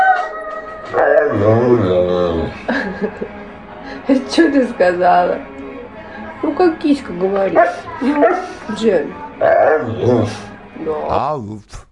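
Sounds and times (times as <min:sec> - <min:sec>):
dog howling with wavering pitch: 0:00.0 - 0:02.6, 0:07.5 - 0:08.6, 0:09.4 - 0:11.1
speech: 0:01.4 - 0:05.6, 0:06.5 - 0:11.8
laughter: 0:02.4 - 0:04.2, 0:07.9 - 0:08.5.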